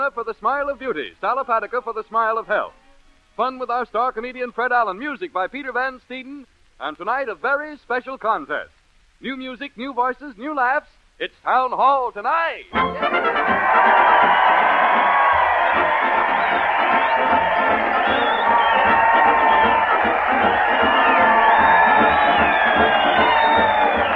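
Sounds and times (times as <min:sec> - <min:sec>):
speech: 0:00.0 - 0:02.8, 0:03.4 - 0:13.9
large crowd cheering and shouting at a parade: 0:12.7 - 0:24.1.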